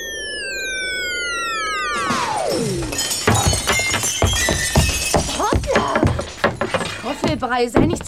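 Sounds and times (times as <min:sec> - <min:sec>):
long descending whistle as a broom-riding witch lands: 0:00.0 - 0:03.1
glass window pane shattering at a school: 0:02.5 - 0:08.0
tinkling clattering glass debris: 0:02.5 - 0:08.0
speech: 0:07.3 - 0:08.0.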